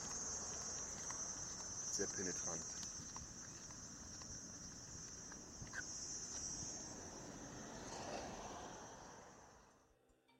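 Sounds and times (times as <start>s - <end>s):
cicadas in trees droning shrill and high-pitched: 0.0s - 9.8s
speech: 2.0s - 2.8s.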